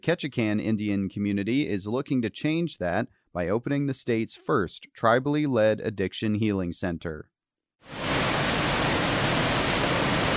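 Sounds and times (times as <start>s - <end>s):
speech: 0.0s - 8.0s
waterfall in Southeast Alaska roaring onto a rocky shoreline: 7.9s - 10.3s.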